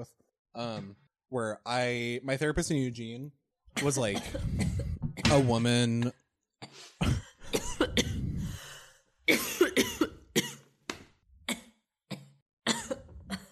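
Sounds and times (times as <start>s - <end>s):
speech: 0.0s - 7.2s
person coughing after coffee went down the wrong way: 3.8s - 5.0s, 6.6s - 8.4s, 9.3s - 10.7s, 11.5s - 13.5s.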